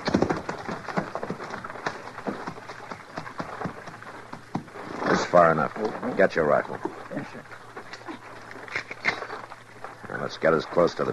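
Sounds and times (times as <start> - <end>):
horses' hooves clip-clopping over rough ground off the trail: 0.0 - 11.1
speech: 5.3 - 7.6, 10.3 - 11.1.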